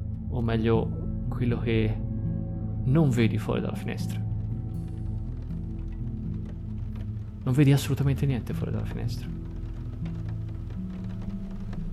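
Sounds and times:
speech: 0.4s - 2.1s, 2.8s - 4.2s, 7.4s - 9.4s
rain beating on window glass: 4.4s - 11.9s.

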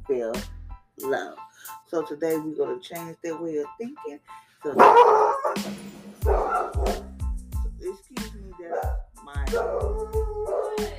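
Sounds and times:
speech: 0.1s - 7.1s, 7.8s - 10.9s
dog barking and yipping: 4.8s - 7.1s, 8.7s - 9.0s, 9.6s - 10.8s.

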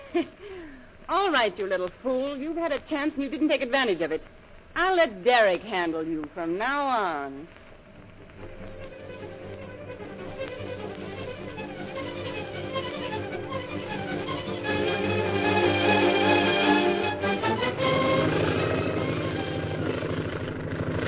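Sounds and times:
speech: 0.1s - 0.4s, 1.1s - 7.6s
propeller plane engine droning while landing: 7.7s - 21.0s.

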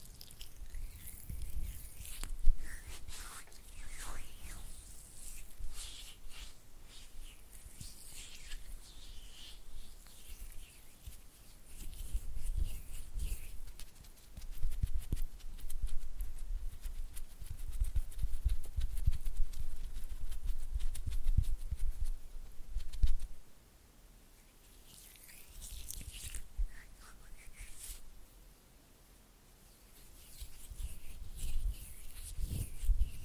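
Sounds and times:
oily palms rubbing: 0.0s - 23.4s, 24.6s - 28.2s, 29.8s - 33.2s.

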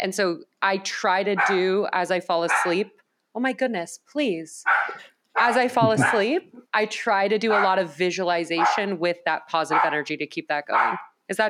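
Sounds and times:
speech: 0.0s - 11.4s
dog barking: 1.4s - 1.6s, 2.5s - 2.8s, 4.7s - 6.2s, 7.5s - 7.9s, 8.6s - 8.9s, 9.7s - 10.0s, 10.7s - 11.2s
laughter: 5.5s - 6.4s.

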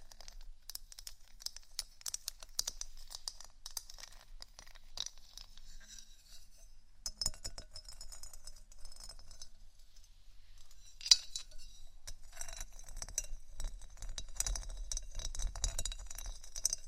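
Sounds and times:
gentle scratching and tapping with light clicks: 0.0s - 16.8s.

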